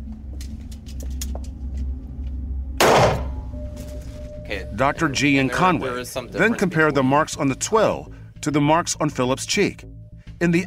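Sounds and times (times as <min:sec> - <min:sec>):
steady low hum: 0:00.0 - 0:10.6
gunshot fired into a twill cotton target during a forensic test: 0:02.8 - 0:03.4
speech: 0:04.5 - 0:10.6.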